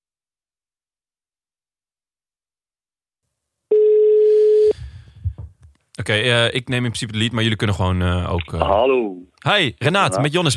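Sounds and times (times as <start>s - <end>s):
telephone ringing tone while placing a call: 3.7s - 4.8s
speech: 6.1s - 10.5s.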